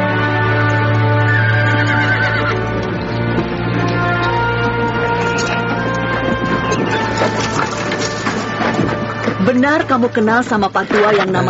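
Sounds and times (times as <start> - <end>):
faint horse hoof clops: 0.2 - 11.4
horse neighing loudly with a long whinnying call: 1.2 - 2.7
speech: 9.6 - 11.4.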